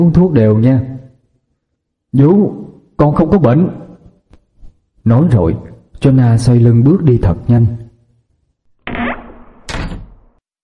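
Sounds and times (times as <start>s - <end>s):
speech: 0.0s - 0.9s, 2.1s - 3.8s, 5.0s - 7.8s
room door swinging shut: 8.8s - 10.4s.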